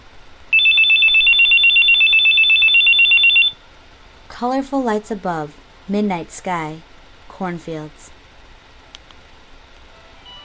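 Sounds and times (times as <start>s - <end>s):
telephone ringing with a trilling electronic bell: 0.5s - 3.6s
speech: 4.4s - 8.2s.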